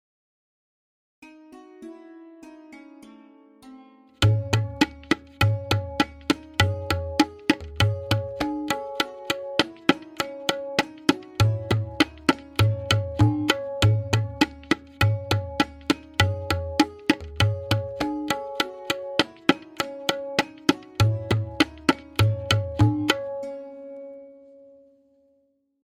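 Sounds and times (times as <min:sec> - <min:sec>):
lehra melody: 0:01.2 - 0:25.0
tabla kaida in tintal: 0:04.2 - 0:23.4.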